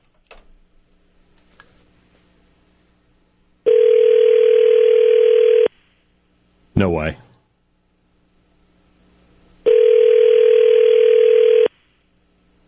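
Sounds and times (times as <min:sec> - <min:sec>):
telephone ringing on a call patched through on the air: 0:03.7 - 0:05.7, 0:09.6 - 0:11.7
speech: 0:07.0 - 0:07.3.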